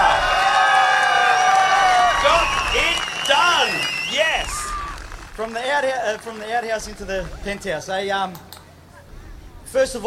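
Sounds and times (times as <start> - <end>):
home crowd cheering and whooping at a Top Fuel racing event in Mildura: 0.0 - 6.4
speech: 5.4 - 8.5, 9.7 - 10.0.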